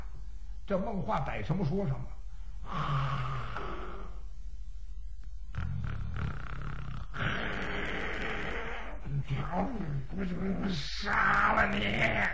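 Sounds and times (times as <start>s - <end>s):
speech: 0.7s - 3.2s, 9.3s - 12.3s
voice imitating loud snoring: 2.7s - 4.2s, 5.5s - 10.0s, 10.6s - 12.3s.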